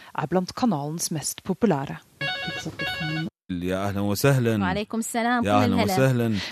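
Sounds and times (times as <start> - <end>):
speech: 0.2 - 6.5
electronic telephone ringing: 2.2 - 3.3
man speaking over a poor phone line: 3.5 - 4.8, 5.4 - 6.5.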